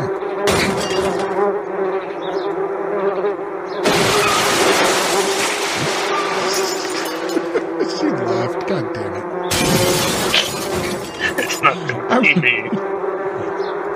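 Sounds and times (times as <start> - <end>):
bees buzzing while swarming: 0.0 - 13.9
laughter: 6.3 - 9.2, 11.1 - 12.9
faint voices: 7.6 - 9.2, 11.2 - 12.8.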